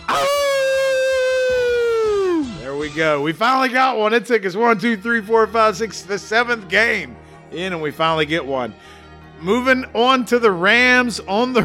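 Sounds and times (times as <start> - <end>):
wolf howl sound effect: 0.0 - 2.5
speech: 3.0 - 11.6.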